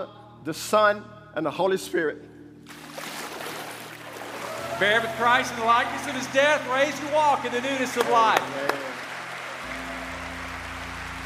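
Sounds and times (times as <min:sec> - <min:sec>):
speech: 0:00.0 - 0:02.8, 0:04.8 - 0:08.8
church congregation clapping during a baptism service: 0:04.2 - 0:11.2.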